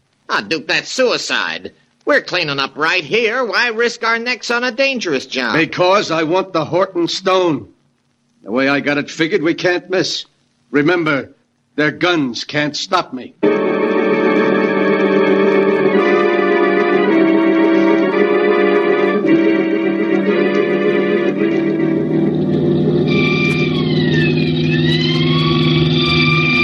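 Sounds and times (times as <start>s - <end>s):
speech: 0.3s - 7.8s, 8.4s - 13.6s
wailing siren: 13.4s - 26.6s
car engine roaring at full throttle: 19.3s - 26.6s.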